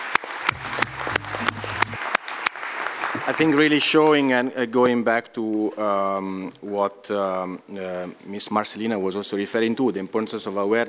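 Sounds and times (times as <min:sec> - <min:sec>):
audience applause of many hands clapping: 0:00.0 - 0:04.0
speech: 0:00.5 - 0:00.8, 0:03.2 - 0:10.8.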